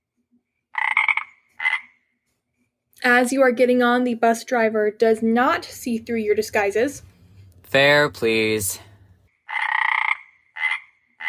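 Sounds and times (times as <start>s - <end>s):
frog croaking: 0.8s - 2.0s, 9.4s - 11.2s
speech: 3.0s - 7.1s, 7.7s - 8.9s.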